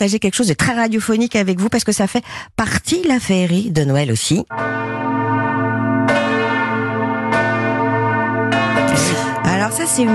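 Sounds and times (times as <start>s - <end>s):
speech: 0.0s - 5.4s, 9.7s - 10.1s
church bells ringing from city bell towers: 4.5s - 10.1s.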